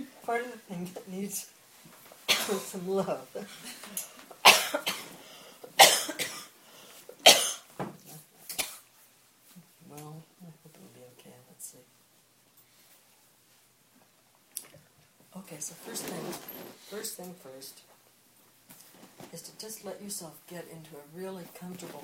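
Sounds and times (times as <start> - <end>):
speech: 0.3 - 1.6, 2.4 - 5.1, 15.5 - 17.9, 19.3 - 22.0
person leading a meditation coughing harshly: 2.3 - 2.8, 4.4 - 5.2, 5.8 - 6.5, 7.2 - 7.7.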